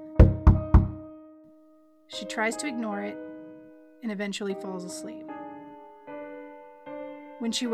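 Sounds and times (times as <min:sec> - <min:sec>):
soft knocks on a wooden bedroom door: 0:00.2 - 0:01.0
speech: 0:02.2 - 0:03.3, 0:04.0 - 0:05.4, 0:07.4 - 0:07.7.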